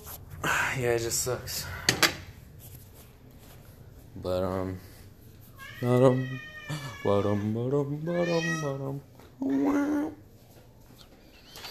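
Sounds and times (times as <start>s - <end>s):
speech: 0.8s - 2.1s, 4.2s - 4.9s, 5.8s - 10.2s
cats meowing and caterwauling: 5.6s - 10.1s, 11.3s - 11.7s.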